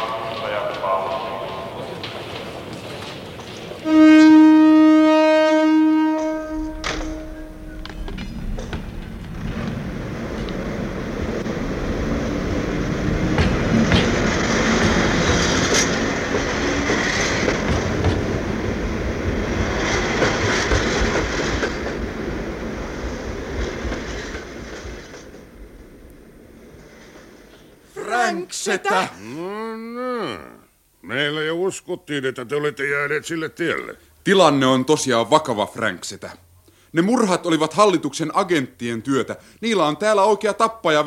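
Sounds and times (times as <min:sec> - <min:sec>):
faint rhythmic clatter of train wheels on rails: 0:00.0 - 0:27.8
express train departing with a dense rumbling roar: 0:00.0 - 0:30.1
speech: 0:31.9 - 0:41.0.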